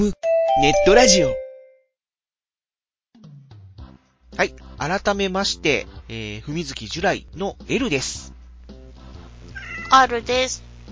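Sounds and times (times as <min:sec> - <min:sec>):
speech: 0:00.0 - 0:01.4, 0:04.4 - 0:08.4, 0:09.9 - 0:10.8
cat meowing: 0:09.5 - 0:10.2.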